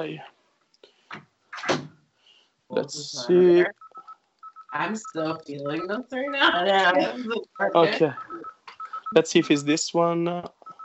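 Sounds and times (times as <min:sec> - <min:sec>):
speech: 0:00.0 - 0:00.3, 0:02.7 - 0:03.8, 0:04.7 - 0:08.5, 0:09.1 - 0:10.6
door swinging shut with a click, creak and thud: 0:01.6 - 0:02.0
laughter: 0:02.8 - 0:03.4, 0:04.8 - 0:08.4, 0:09.0 - 0:10.4.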